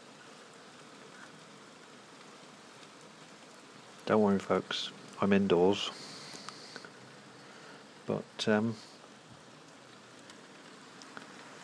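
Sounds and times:
hail pattering outside: 0:00.0 - 0:11.6
speech: 0:04.1 - 0:06.1, 0:08.1 - 0:08.9.

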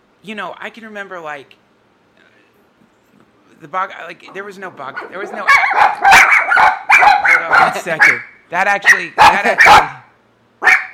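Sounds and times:
speech: 0:00.2 - 0:01.6, 0:03.6 - 0:06.8, 0:07.4 - 0:10.0
dogs barking: 0:04.8 - 0:10.9.

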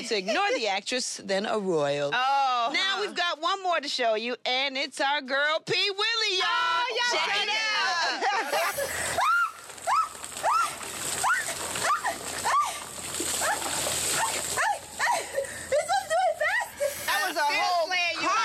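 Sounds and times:
speech: 0:00.0 - 0:09.1
laughter: 0:07.9 - 0:09.5, 0:14.2 - 0:18.4
ice water with ice cubes pouring slowly from a bucket: 0:08.5 - 0:15.6, 0:16.6 - 0:17.8.

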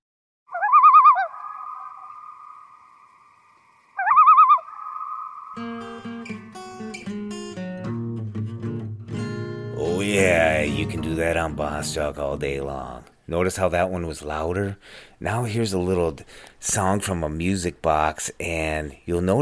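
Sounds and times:
warbling loon calls: 0:00.5 - 0:05.8
plucked guitar notes: 0:05.6 - 0:13.0
speech: 0:10.0 - 0:19.4.

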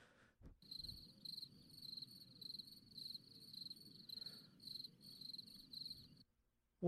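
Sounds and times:
cricket chirping: 0:00.6 - 0:06.2.

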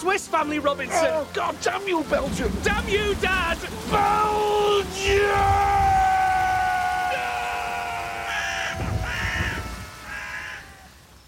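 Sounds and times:
speech: 0:00.0 - 0:06.0
crow cawing: 0:05.3 - 0:11.2.

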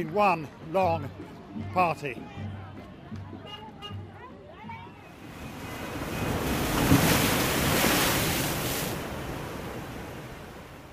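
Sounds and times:
speech: 0:00.0 - 0:02.4
rough stormy sea waves crashing against rocks: 0:05.1 - 0:10.9.

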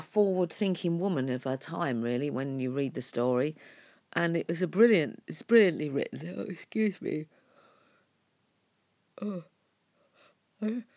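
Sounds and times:
speech: 0:00.0 - 0:07.4, 0:09.2 - 0:09.5, 0:10.6 - 0:10.9
person yawning: 0:09.2 - 0:09.5, 0:10.6 - 0:10.9.

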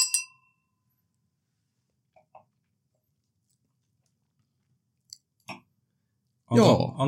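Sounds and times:
champagne glasses clinking in a toast: 0:00.0 - 0:00.6
speech: 0:06.5 - 0:07.0.

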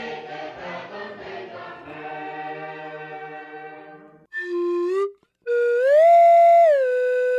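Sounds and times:
person whistling an imitation of a nautical boatswain's pipe call: 0:04.3 - 0:07.3.

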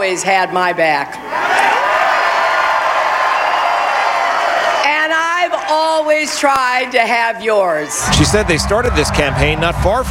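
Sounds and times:
speech: 0:00.0 - 0:01.7, 0:05.7 - 0:10.0
big crowd of supporters roaring and cheering in a ballroom at the New York Sheraton: 0:01.1 - 0:05.9, 0:07.7 - 0:10.0.

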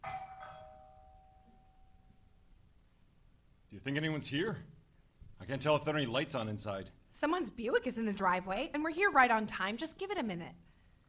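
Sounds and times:
ordinary doorbell ringing with two chimes: 0:00.0 - 0:02.1
speech: 0:03.7 - 0:04.8, 0:05.4 - 0:10.6.

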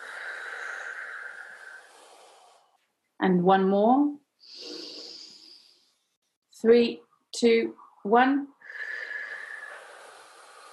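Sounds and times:
slow deep exhale after a held breath in a breathing exercise: 0:00.0 - 0:02.8, 0:04.4 - 0:05.9, 0:08.6 - 0:10.7
speech: 0:03.2 - 0:04.7, 0:06.6 - 0:08.8.

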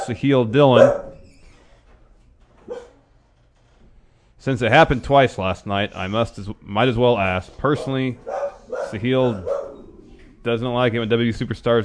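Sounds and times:
low hum: 0:00.0 - 0:11.8
speech: 0:00.1 - 0:01.1, 0:04.4 - 0:09.6, 0:10.4 - 0:11.8
dog bark: 0:00.7 - 0:01.2, 0:02.7 - 0:03.0, 0:07.8 - 0:09.8.

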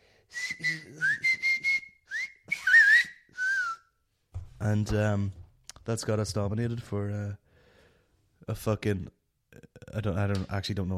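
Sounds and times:
person whistling a line from a play: 0:00.3 - 0:04.0
speech: 0:04.6 - 0:07.4, 0:08.5 - 0:10.9.

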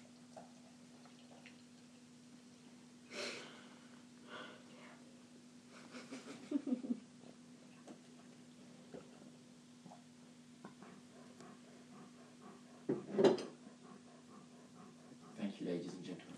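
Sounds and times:
steady low hum: 0:00.0 - 0:16.3
dog panting: 0:10.7 - 0:16.3.

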